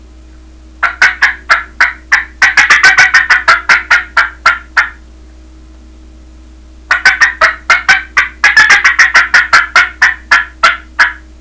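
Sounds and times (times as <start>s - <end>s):
turkey cackles: 0.8s - 5.0s, 6.9s - 11.3s.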